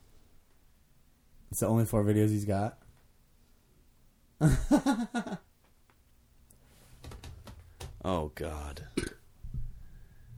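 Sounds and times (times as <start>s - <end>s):
speech: 1.5s - 2.8s, 4.4s - 5.4s, 8.4s - 9.1s
short low throaty burp: 9.0s - 9.2s.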